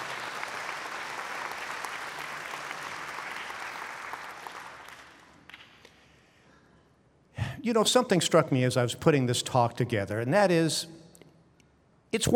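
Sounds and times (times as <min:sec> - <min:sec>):
crowd applauding: 0:00.0 - 0:05.8
speech: 0:07.6 - 0:11.0, 0:12.1 - 0:12.3.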